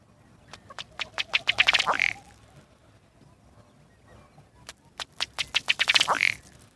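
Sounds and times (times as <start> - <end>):
diving ducks quacking: 0.6 - 2.4, 5.3 - 6.5.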